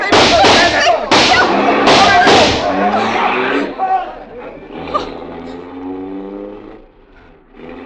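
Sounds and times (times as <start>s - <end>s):
gunshot cracks striking a car windshield: 0.1s - 2.9s
steady car engine rumble: 0.3s - 7.8s.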